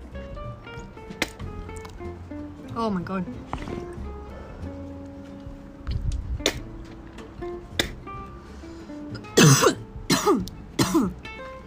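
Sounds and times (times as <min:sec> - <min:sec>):
quiet rustling: 0:00.7 - 0:07.7
speech: 0:02.7 - 0:03.9
harsh raspy coughing fit: 0:09.2 - 0:11.2.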